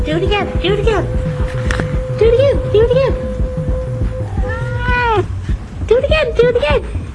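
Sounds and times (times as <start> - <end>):
people talking: 0.0 - 1.2, 1.8 - 3.2, 4.4 - 5.3, 5.9 - 6.9
cat meowing: 4.2 - 5.3.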